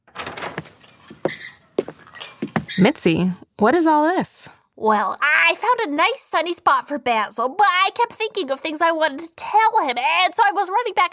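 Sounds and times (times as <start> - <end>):
door opening with rattling sliding scrape: 0.0 - 2.9
speech: 1.2 - 1.5, 2.8 - 11.1.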